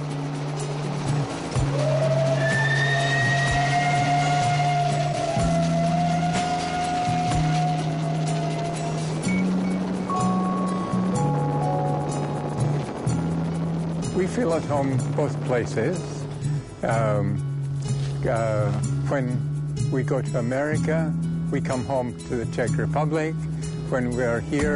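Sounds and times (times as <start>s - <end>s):
high whine of moving train: 0.0s - 17.6s
moving train low mechanical rumble: 0.0s - 18.9s
speech: 14.4s - 16.2s, 16.8s - 17.4s, 18.2s - 24.7s.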